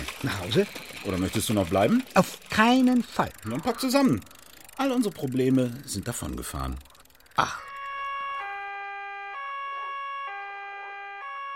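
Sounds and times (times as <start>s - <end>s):
speech: 0.2s - 7.7s
police car siren in a two-tone pattern: 7.4s - 11.5s.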